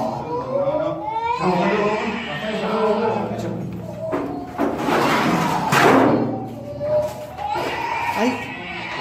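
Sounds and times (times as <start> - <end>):
child crying inside an abandoned sanatorium: 0.0 - 3.2, 6.3 - 8.9
speech: 1.4 - 1.9
scraping noises: 3.4 - 8.9.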